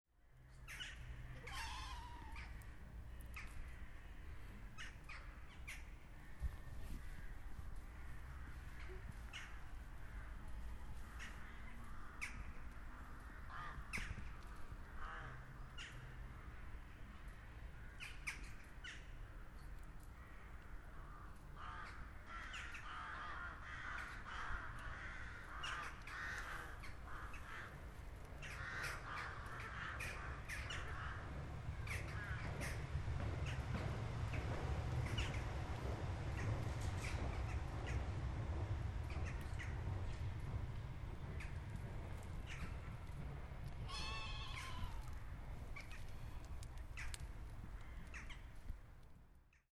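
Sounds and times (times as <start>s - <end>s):
tram: 0.3s - 48.4s
zoo birds: 0.5s - 48.7s
zoo goats: 43.8s - 45.2s.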